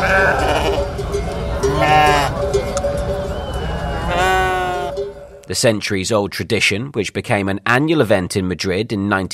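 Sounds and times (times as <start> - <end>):
flock of sheep bleating in a city street: 0.0 - 0.9, 1.7 - 2.4, 4.1 - 5.0
outdoor crowd murmur: 0.0 - 5.0
speech: 5.5 - 9.3.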